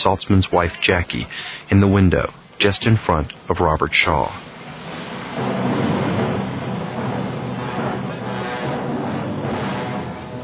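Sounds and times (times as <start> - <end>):
speech: 0.0 - 4.5
passenger train rolling along rails: 4.4 - 10.4.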